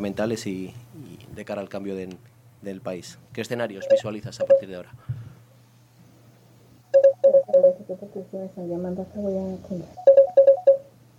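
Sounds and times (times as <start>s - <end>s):
speech: 0.0s - 5.2s, 7.7s - 10.1s
telephone ringing with an incoming call: 3.8s - 4.7s, 6.9s - 7.8s, 10.0s - 10.9s.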